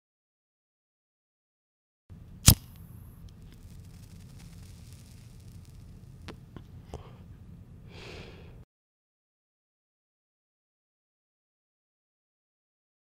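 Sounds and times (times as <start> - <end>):
cigarette being lit: 2.4 - 6.4
person smoking a cigarette: 2.4 - 8.6.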